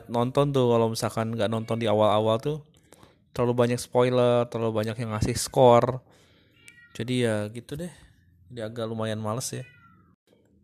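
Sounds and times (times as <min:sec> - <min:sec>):
speech: 0:00.1 - 0:02.7, 0:03.4 - 0:06.2, 0:07.0 - 0:09.8
cat meowing: 0:06.4 - 0:07.3, 0:09.4 - 0:10.2.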